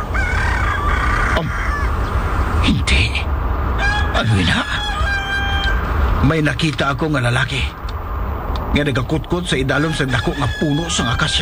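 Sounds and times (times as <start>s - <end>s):
roosters crowing at dawn: 0.0s - 11.4s
low rumble: 1.3s - 9.8s
speech: 4.2s - 4.8s, 6.2s - 7.8s, 8.7s - 11.4s.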